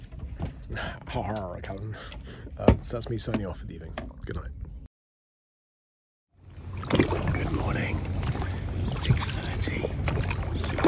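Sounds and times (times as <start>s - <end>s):
speech: 0.8s - 4.6s
small boat tender engine drone: 6.4s - 10.8s
water splashing and hissing against the hull: 6.5s - 10.8s.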